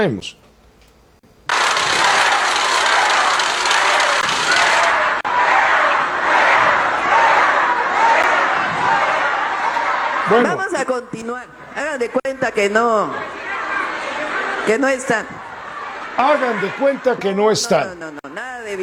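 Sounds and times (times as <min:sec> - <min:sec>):
speech: 0:00.0 - 0:00.4, 0:10.3 - 0:13.4, 0:14.6 - 0:15.4, 0:16.2 - 0:18.8
large crowd booing loudly: 0:01.5 - 0:18.8
laughter: 0:01.5 - 0:18.8.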